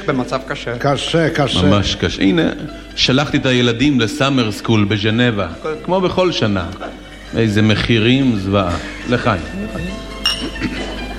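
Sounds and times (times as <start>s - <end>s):
speech: 0.0s - 10.0s
glasses clinking together in a toast: 9.8s - 11.1s.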